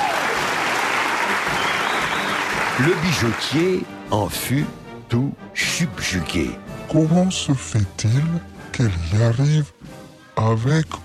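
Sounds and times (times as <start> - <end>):
applause for a performer's well-coordinated display: 0.0 - 3.8
speech: 2.8 - 9.8, 10.4 - 11.0.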